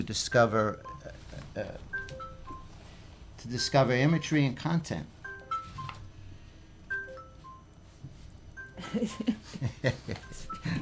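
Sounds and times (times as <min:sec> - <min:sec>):
speech: 0:00.0 - 0:02.2, 0:03.4 - 0:05.2, 0:08.9 - 0:10.7
cell phone ringing with short electronic beeping tones: 0:00.3 - 0:03.0, 0:05.2 - 0:07.8, 0:08.6 - 0:09.2, 0:10.1 - 0:10.7.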